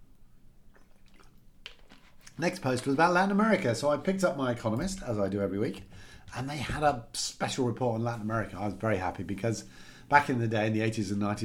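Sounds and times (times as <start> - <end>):
person sipping and swallowing water: 0.1 - 2.9
speech: 2.4 - 11.4.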